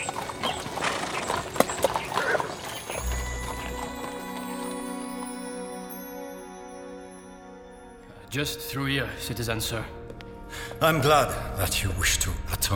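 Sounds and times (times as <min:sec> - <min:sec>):
horse hooves clip-clopping at a trot: 0:00.0 - 0:05.8
speech: 0:08.4 - 0:10.0, 0:10.8 - 0:12.7.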